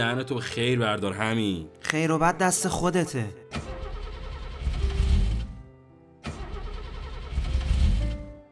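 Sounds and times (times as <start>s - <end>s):
speech: 0.0s - 3.5s
car engine cranking without starting: 3.5s - 5.6s, 6.2s - 8.3s.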